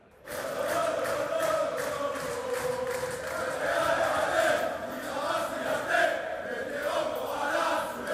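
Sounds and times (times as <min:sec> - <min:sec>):
large crowd of football supporters chanting and singing in a city square: 0:00.0 - 0:08.1.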